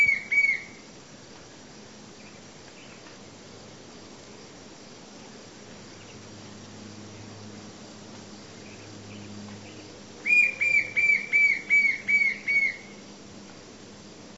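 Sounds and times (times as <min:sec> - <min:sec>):
White-shouldered fire-eye Pyriglena leucoptera whistling: 0:00.0 - 0:00.8, 0:10.2 - 0:13.0
soft background hum: 0:00.0 - 0:14.3.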